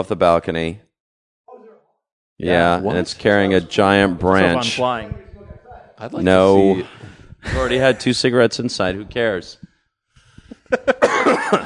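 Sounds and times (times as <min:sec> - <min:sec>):
speech: 0:00.0 - 0:00.9, 0:02.4 - 0:05.2, 0:06.0 - 0:09.7
person coughing in a rough coughing fit: 0:10.9 - 0:11.6.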